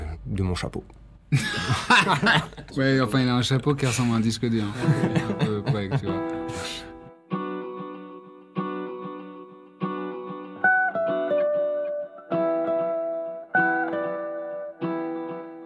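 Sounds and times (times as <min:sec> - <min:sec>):
speech: 0:00.3 - 0:06.8
laughter: 0:01.3 - 0:02.7, 0:04.7 - 0:06.5
processed guitar samples looping in chord bursts: 0:04.7 - 0:15.6.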